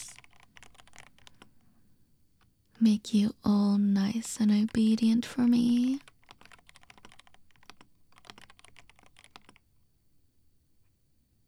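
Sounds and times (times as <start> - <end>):
typing on a computer keyboard: 0.0 - 1.7, 4.1 - 9.8
speech: 2.8 - 6.1.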